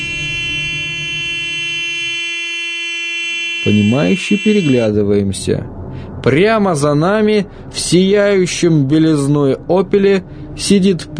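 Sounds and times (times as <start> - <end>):
car horn honking with harsh buzzing tone: 0.0 - 4.9
speech: 3.6 - 11.1.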